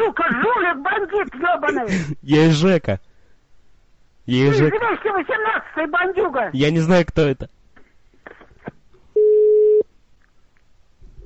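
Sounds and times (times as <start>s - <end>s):
speech: 0.0s - 3.1s, 4.3s - 7.6s
telephone busy tone beep after the other party hangs up: 9.2s - 9.8s.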